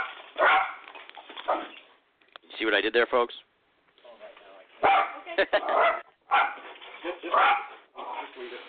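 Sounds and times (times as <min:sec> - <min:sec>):
dog barking and yipping: 0:00.0 - 0:01.8, 0:04.8 - 0:07.8
speech: 0:02.6 - 0:03.5, 0:05.4 - 0:07.7, 0:08.4 - 0:08.6.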